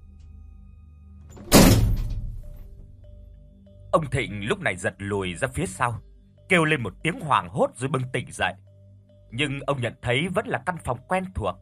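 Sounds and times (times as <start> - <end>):
head striking a door frame: 1.4 - 2.5
speech: 3.9 - 8.6, 9.3 - 11.6.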